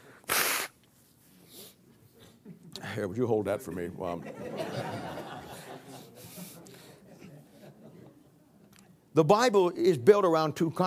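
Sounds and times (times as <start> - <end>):
person blowing their nose: 0.0 - 0.8
person sniffing: 0.0 - 2.3, 6.2 - 7.0
speech: 2.9 - 4.9, 9.2 - 10.8
laughter: 3.8 - 8.3.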